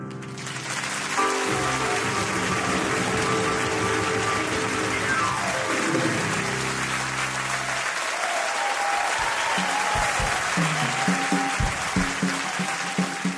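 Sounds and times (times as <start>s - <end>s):
crowd applause: 0.1s - 13.3s
falling run of musical tones: 0.9s - 7.8s.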